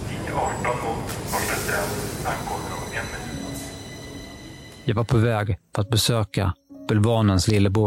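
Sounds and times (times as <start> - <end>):
moving subway train rumbling and rattling: 0.0 - 5.2
speech: 4.8 - 7.8.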